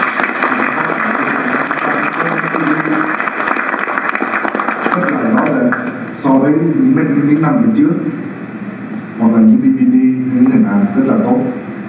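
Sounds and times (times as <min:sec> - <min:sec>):
audience applause: 0:00.0 - 0:06.0
speech: 0:06.4 - 0:08.3, 0:09.2 - 0:11.6.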